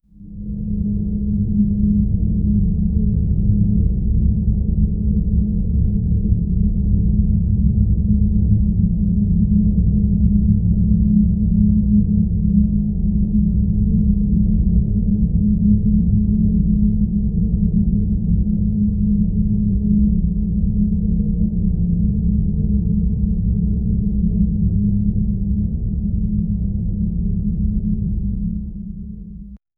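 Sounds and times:
low dark ambient drone: 0:00.2 - 0:29.6.

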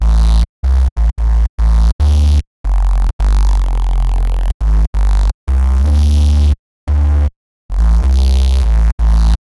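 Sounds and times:
growling bass synth: 0:00.0 - 0:09.4.

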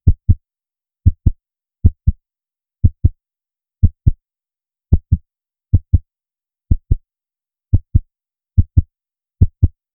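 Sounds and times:
short quiet heartbeat: 0:00.0 - 0:02.2, 0:02.8 - 0:03.2, 0:03.8 - 0:04.2, 0:04.9 - 0:06.1, 0:06.7 - 0:07.1, 0:07.7 - 0:09.9.

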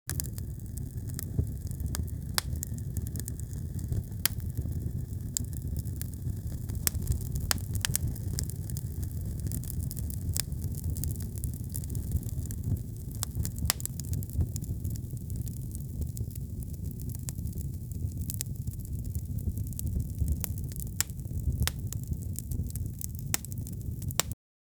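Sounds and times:
hot fire burning: 0:00.1 - 0:24.4.

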